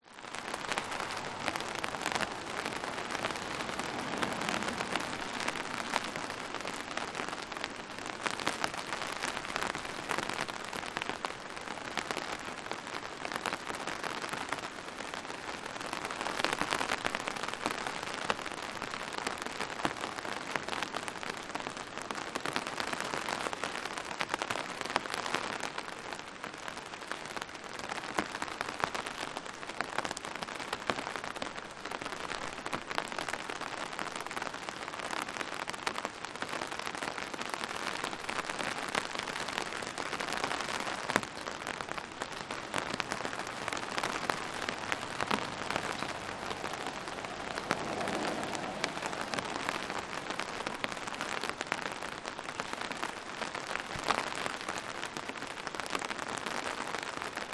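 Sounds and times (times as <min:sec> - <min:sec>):
light rain on an umbrella: 0:00.0 - 0:57.5
cars passing: 0:00.6 - 0:07.6, 0:42.5 - 0:50.9.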